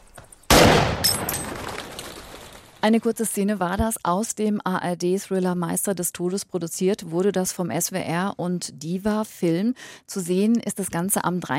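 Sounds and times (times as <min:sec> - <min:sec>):
loud gunshot at a shooting range: 0:00.5 - 0:01.6
speech: 0:02.8 - 0:11.5.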